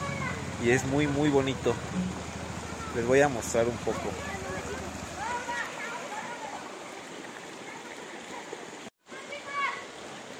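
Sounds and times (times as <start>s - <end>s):
spring water rushing and splashing: 0.0s - 10.3s
speech: 0.6s - 2.3s, 2.9s - 4.4s
spring water bubbling: 1.3s - 8.8s.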